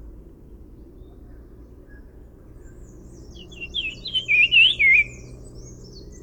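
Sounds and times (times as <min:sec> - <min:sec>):
brown-cheeked fulvetta call in Agumbe, Karnataka, India: 0:03.4 - 0:05.3.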